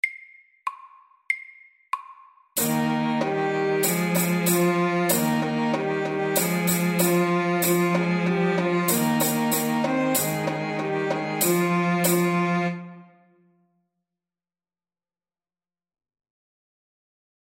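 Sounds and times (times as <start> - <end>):
slow folk dance music: 2.6 - 13.0.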